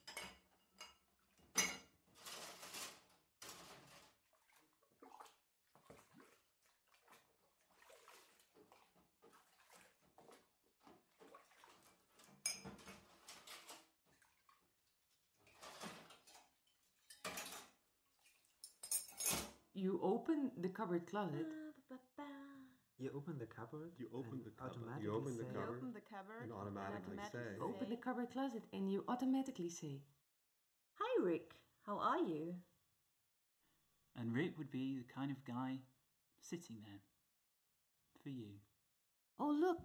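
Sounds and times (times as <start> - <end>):
plates and cutlery clinking while washing dishes: 0.0 - 3.9, 12.2 - 13.9, 15.5 - 17.8, 18.6 - 19.6
running water at a sink: 2.2 - 19.0
speech: 19.8 - 22.0, 23.0 - 30.1, 31.2 - 32.7, 34.2 - 37.1, 38.2 - 38.7, 39.4 - 39.8.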